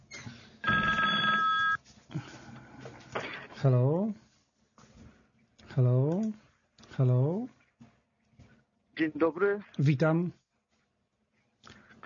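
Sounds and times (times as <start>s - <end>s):
telephone ringing: 0.6s - 1.8s
speech: 3.6s - 4.2s, 5.8s - 6.4s, 7.0s - 7.5s, 9.0s - 10.4s.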